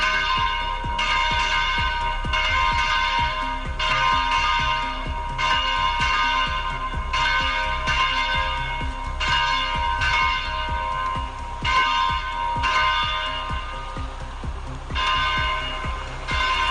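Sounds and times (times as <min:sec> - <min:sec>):
church bells tolling a funeral knell: 0:00.0 - 0:16.6.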